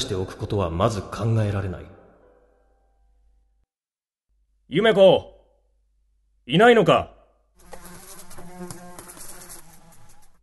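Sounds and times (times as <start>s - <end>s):
speech: 0.0s - 2.0s, 4.7s - 5.3s, 6.4s - 7.2s
insect buzzing with droning wings: 7.6s - 10.4s.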